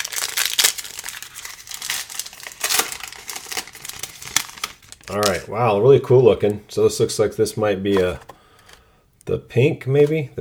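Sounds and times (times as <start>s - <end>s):
wrapping crinkling and tearing as a box of trading cards is opened: 0.0s - 5.4s
speech: 5.1s - 8.3s, 9.4s - 10.3s.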